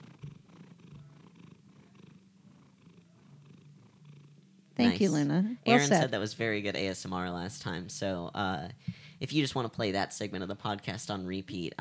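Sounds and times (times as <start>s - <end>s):
cat purring: 0.0s - 6.4s
speech: 4.8s - 11.7s.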